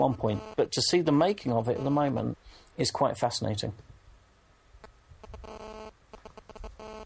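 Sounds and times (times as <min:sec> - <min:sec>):
speech: 0:00.0 - 0:03.9
electronic phone beeps: 0:00.3 - 0:00.6, 0:05.2 - 0:07.0.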